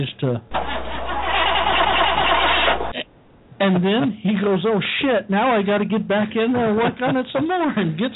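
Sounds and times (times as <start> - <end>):
speech: 0.0 - 0.6, 3.6 - 8.1
car engine cranking with starter, battery just hooked up: 0.5 - 3.0.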